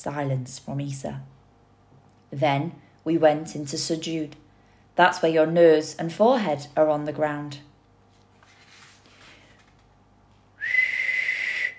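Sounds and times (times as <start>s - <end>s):
speech: 0.0s - 1.4s, 2.3s - 4.4s, 5.0s - 7.7s
loud piercing whistle blast: 10.6s - 11.7s.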